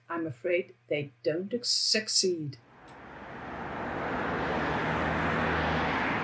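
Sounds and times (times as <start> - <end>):
speech: 0.2 - 2.7
dense road traffic rumble at a busy roundabout: 2.6 - 6.2.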